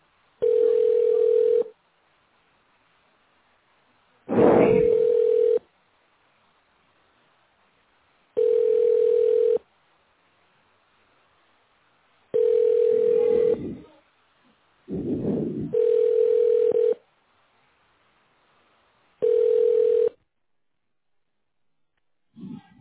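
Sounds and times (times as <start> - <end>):
telephone ringback tone on an unanswered call: 0.4 - 1.7, 4.8 - 5.6, 8.4 - 9.6, 12.4 - 13.6, 15.7 - 17.0, 19.2 - 20.2.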